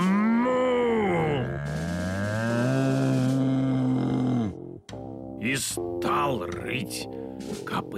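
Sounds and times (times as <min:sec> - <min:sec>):
person imitating a bull bellowing loudly and angrily: 0:00.0 - 0:04.8
speech: 0:05.5 - 0:07.9.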